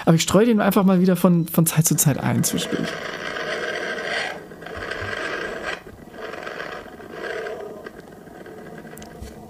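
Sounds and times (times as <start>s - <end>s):
speech: 0.0s - 3.3s
sonified space recording of the Sun, rough rasping drone: 2.4s - 9.4s.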